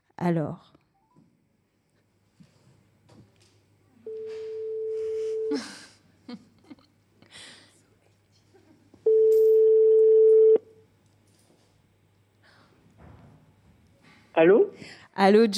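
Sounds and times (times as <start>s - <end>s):
speech: 0.2s - 0.8s, 5.5s - 6.4s, 14.4s - 15.5s
long steady electronic telephone ring tones: 4.1s - 5.5s, 9.1s - 10.7s.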